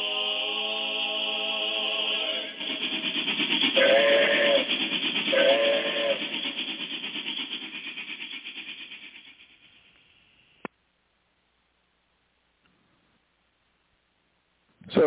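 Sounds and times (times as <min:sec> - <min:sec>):
steam train whistle blowing: 0:00.0 - 0:06.9
steam train chugging: 0:00.0 - 0:10.7.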